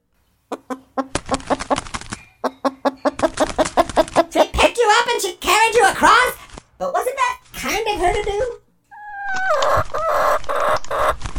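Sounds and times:
chicken clucking: 0.4s - 4.5s, 8.9s - 11.3s
rustling: 1.1s - 8.6s, 9.2s - 11.3s.

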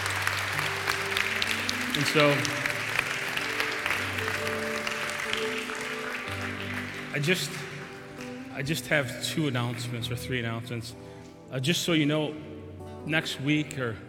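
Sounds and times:
congregation clapping and applauding: 0.0s - 10.2s
speech: 2.0s - 2.6s, 7.1s - 7.6s, 8.6s - 14.0s.

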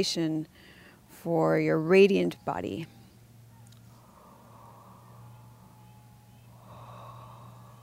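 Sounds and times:
speech: 0.0s - 3.0s
steady low humming drone: 0.8s - 7.8s
deep breathing through an open O-shaped mouth during breathing meditation: 3.9s - 7.8s.

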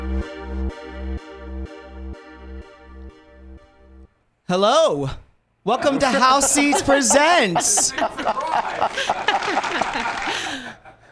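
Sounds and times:
speech: 0.2s - 10.8s
crowd laughter: 5.7s - 11.1s
crowd whooping: 5.9s - 10.5s
audience applause: 6.0s - 10.8s.

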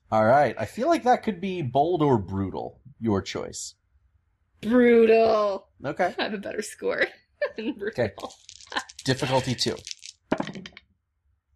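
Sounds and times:
speech: 0.1s - 3.8s, 4.6s - 10.0s
laughter: 0.2s - 3.6s, 9.1s - 9.8s
dice rolling and clattering on a hard table: 8.2s - 10.7s.

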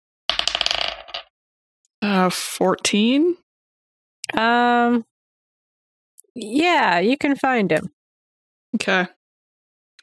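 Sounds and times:
dice rolling across a hard table for a luck check: 0.3s - 1.3s
speech: 2.1s - 3.4s, 4.3s - 5.1s, 6.4s - 8.0s, 8.7s - 9.2s.

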